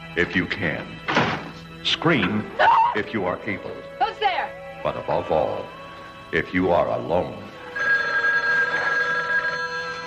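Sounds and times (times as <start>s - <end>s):
speech: 0.2s - 1.1s, 1.8s - 7.5s
telephone ringing: 7.6s - 10.0s.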